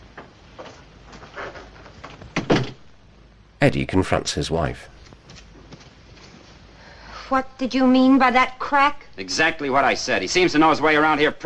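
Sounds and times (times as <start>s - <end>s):
shuffles of a man leaving: 0.0s - 2.5s, 5.0s - 6.8s
front door rattling: 1.4s - 2.9s
front door swung shut with a firm thud: 2.1s - 2.9s
speech: 3.6s - 4.9s, 7.3s - 11.4s.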